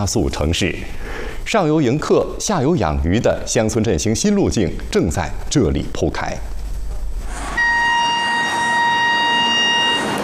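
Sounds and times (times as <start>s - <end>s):
speech: 0.0s - 6.5s
slow passenger train rumbling into a station: 0.0s - 10.2s
high-pitched ringing tone of slow passenger train arriving at station: 7.4s - 10.2s.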